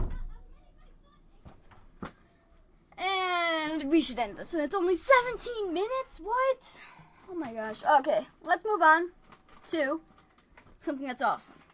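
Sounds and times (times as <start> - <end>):
person kicking a door: 0.0 - 0.5
speech: 3.8 - 10.1, 10.8 - 11.6.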